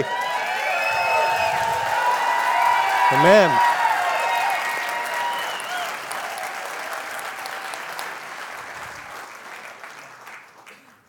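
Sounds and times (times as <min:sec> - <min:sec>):
large crowd cheering, yelling and shouting in praise and thanksgiving: 0:00.0 - 0:07.8
speech: 0:03.1 - 0:03.7.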